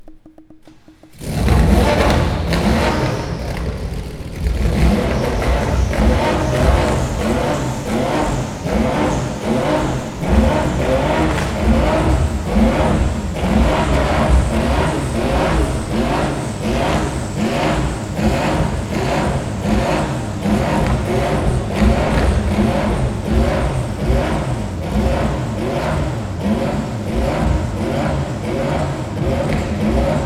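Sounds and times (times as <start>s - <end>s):
Porsche 911 GT1 engine: 1.1s - 30.2s.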